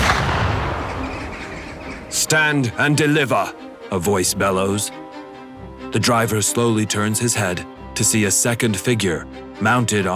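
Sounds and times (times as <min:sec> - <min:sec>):
loud gunshot with heavy low-end blast: 0:00.0 - 0:01.9
speech: 0:02.2 - 0:05.0, 0:05.9 - 0:10.1.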